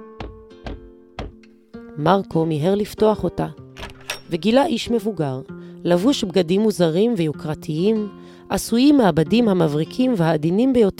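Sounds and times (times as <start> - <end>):
heavy knocks on a door: 0.2 - 1.4
speech: 2.0 - 3.6, 4.3 - 10.9.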